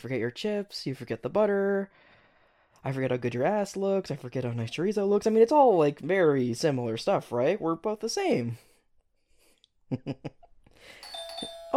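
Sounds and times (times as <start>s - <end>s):
speech: 0.0s - 2.1s, 2.8s - 8.7s, 9.9s - 11.1s
doorbell chiming: 10.9s - 11.7s.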